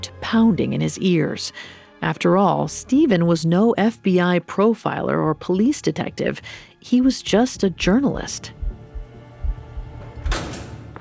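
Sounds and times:
speech: 0.3s - 8.6s
low steady hum: 7.0s - 10.9s
heavy secure prison door swinging open: 9.9s - 10.9s.

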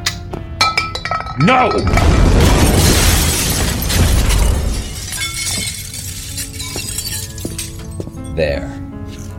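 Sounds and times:
glass shattering: 0.6s - 8.2s
debris rumbling: 1.0s - 7.9s
speech: 1.4s - 2.8s, 8.4s - 8.8s
grenade explosion: 1.8s - 5.0s.

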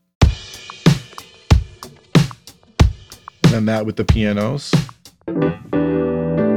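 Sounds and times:
heavy kick-like drum thumps: 0.2s - 5.0s
speech: 3.6s - 5.6s.

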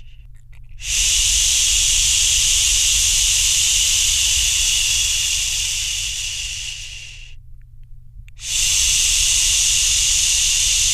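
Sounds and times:
person shushing: 0.8s - 7.4s, 8.4s - 10.9s.

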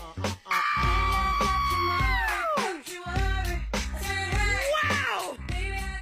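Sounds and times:
steady pulsing music bed: 0.0s - 6.0s
person screaming in comedic reaction: 0.5s - 2.7s.

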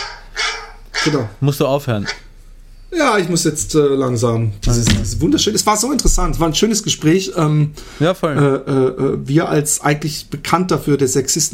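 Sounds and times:
dog bark: 0.0s - 1.2s
speech: 1.0s - 2.2s, 2.9s - 11.5s.

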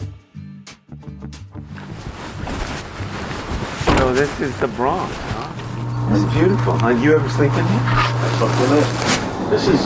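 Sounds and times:
speech: 4.0s - 5.3s, 6.1s - 9.8s
2006 boat engine droning on the water in the Bronx, New York: 4.7s - 9.5s.

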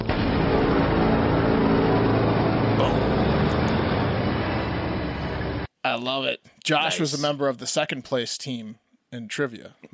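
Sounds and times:
car engine roaring: 0.0s - 5.7s
road noise: 2.0s - 5.7s
speech: 5.9s - 9.9s.

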